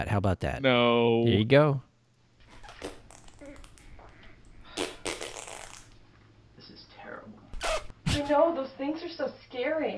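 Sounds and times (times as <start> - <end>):
speech: 0.0 - 1.9, 8.2 - 9.9
faint low hum: 0.0 - 9.9
squeaky sputtering flatulence: 2.4 - 6.0, 7.5 - 8.2.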